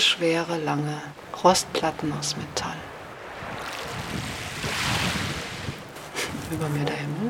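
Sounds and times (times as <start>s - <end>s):
gusty wind: 0.0s - 7.2s
speech: 0.1s - 2.9s, 6.5s - 7.2s
sea waves surging around rocks: 2.8s - 6.4s.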